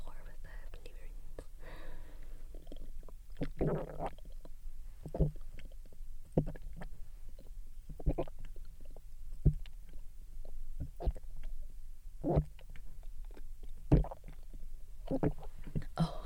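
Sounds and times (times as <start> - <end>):
gulping of water: 2.5 - 9.6, 12.2 - 15.9
throaty burp-like sound: 3.5 - 4.2.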